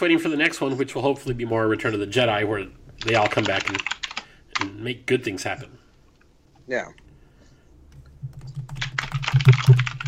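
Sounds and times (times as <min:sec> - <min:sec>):
speech: 0:00.0 - 0:04.0, 0:04.6 - 0:05.8, 0:06.7 - 0:07.0
low steady hum: 0:00.0 - 0:10.0
fast typing on a computer keyboard: 0:03.0 - 0:04.8, 0:07.9 - 0:10.0.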